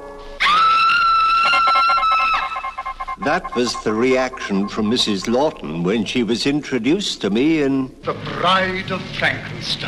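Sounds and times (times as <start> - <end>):
woman screaming in a film scene: 0.4 - 2.8
speech: 3.2 - 9.8.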